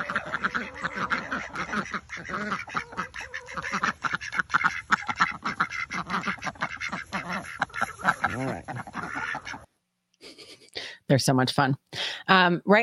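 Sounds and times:
flock of ducks quacking in the morning: 0.0 - 9.8
speech: 11.1 - 12.8.

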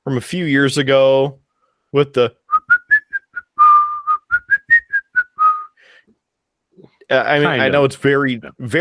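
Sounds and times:
speech: 0.1 - 2.4, 7.1 - 8.8
whistled commercial jingle melody: 2.5 - 5.8.

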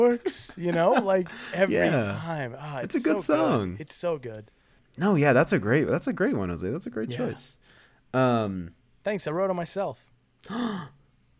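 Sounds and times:
speech: 0.0 - 11.0
short breathy gasp with a voiced edge: 10.4 - 11.0.

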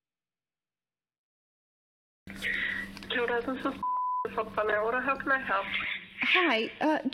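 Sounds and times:
tinny phone-line audio of a call being placed: 2.3 - 7.0
speech: 2.3 - 7.1.

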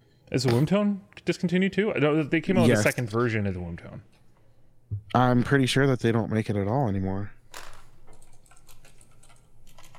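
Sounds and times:
speech: 0.3 - 4.2, 5.1 - 7.4
computer keyboard typing: 8.1 - 9.9.

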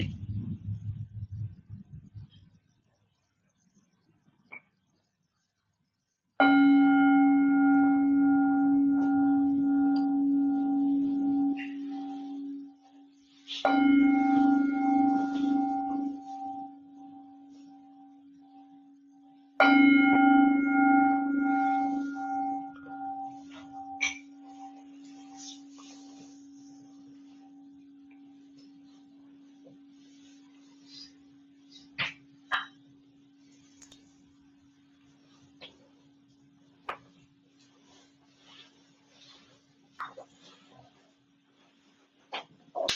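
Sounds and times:
meditation gong being struck: 6.4 - 13.0, 13.7 - 18.8, 19.6 - 29.3.

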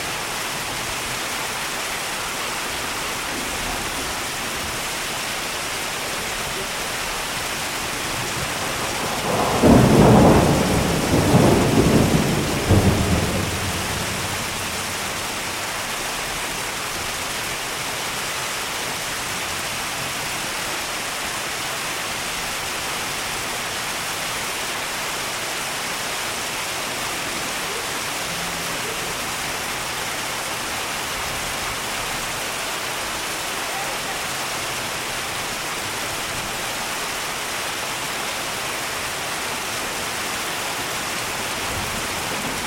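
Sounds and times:
rain hiss: 0.0 - 42.6
loud rumble of thunder: 2.0 - 15.9, 41.0 - 42.6.

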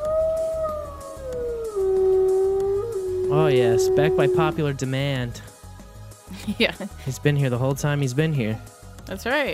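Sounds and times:
person howling like a wolf cub: 0.0 - 4.8
speech: 3.4 - 5.5, 6.4 - 9.5.

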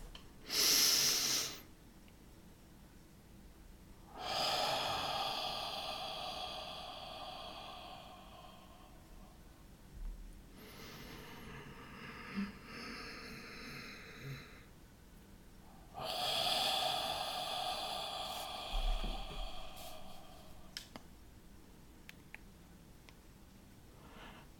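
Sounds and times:
slow deep breaths during a guided relaxation exercise: 0.0 - 1.7, 4.0 - 9.7, 10.5 - 14.8, 15.6 - 20.9, 23.9 - 24.5
faint noise: 0.0 - 24.5.

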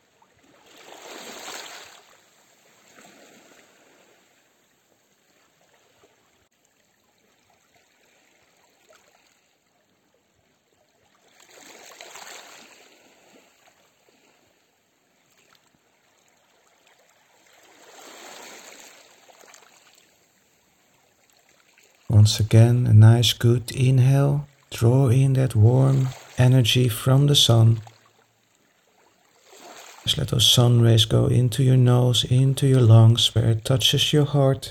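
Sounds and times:
speech: 22.1 - 27.9, 30.1 - 34.6
flowing stream water: 22.2 - 27.8.

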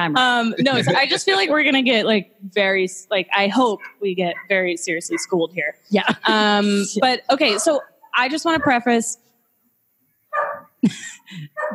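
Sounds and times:
speech: 0.0 - 9.3, 10.8 - 11.7
laughter: 0.4 - 1.6, 6.0 - 7.8
dog barking: 5.1 - 5.4, 7.4 - 7.9, 10.4 - 10.7, 11.6 - 11.7.

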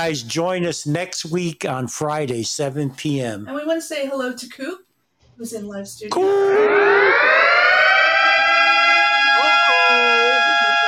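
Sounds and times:
speech: 0.0 - 4.8, 5.4 - 7.3
civil defense siren wailing: 6.1 - 10.8.

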